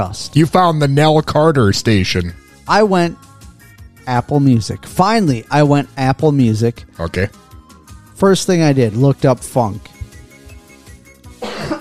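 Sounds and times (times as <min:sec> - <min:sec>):
speech: 0:00.0 - 0:03.3, 0:04.0 - 0:07.4, 0:08.2 - 0:09.9
soft rhythmic music: 0:00.0 - 0:11.8
harsh raspy cough: 0:11.4 - 0:11.8.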